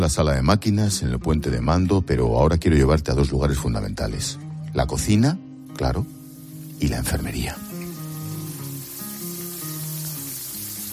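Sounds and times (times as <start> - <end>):
speech: 0.0 - 6.2, 6.8 - 7.6
deep fryer frying potatoes: 6.2 - 10.9.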